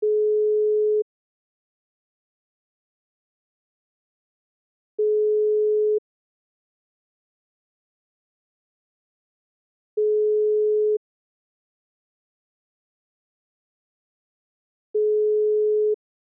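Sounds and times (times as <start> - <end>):
telephone ringback tone: 0.0 - 1.1, 5.0 - 6.0, 10.0 - 11.0, 15.0 - 16.0.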